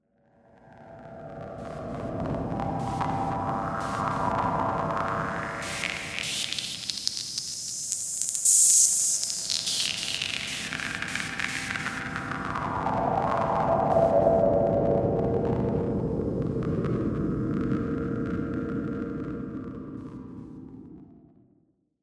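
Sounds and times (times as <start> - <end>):
filtered noises: 0.9 - 20.6
electronic glitches: 3.8 - 14.0.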